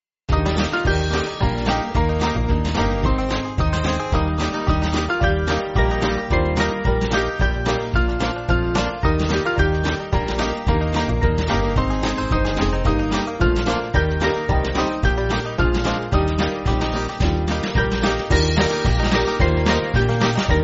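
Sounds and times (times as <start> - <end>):
band playing church backing track: 0.3 - 20.6.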